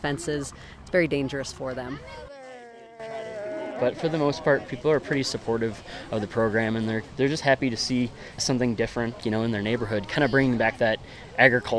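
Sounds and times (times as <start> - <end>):
speech: 0.0 - 2.4, 3.8 - 11.7
goat bleating: 2.1 - 4.3.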